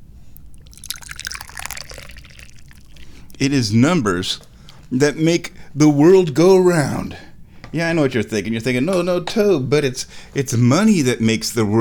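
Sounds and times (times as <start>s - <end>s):
tea being poured into a cup: 0.4s - 3.4s
speech: 3.4s - 11.8s.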